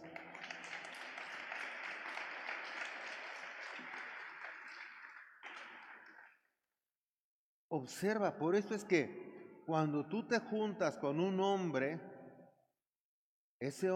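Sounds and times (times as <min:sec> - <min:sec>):
audience applause from many hands: 0:00.0 - 0:06.4
speech: 0:07.7 - 0:12.1, 0:13.6 - 0:13.9.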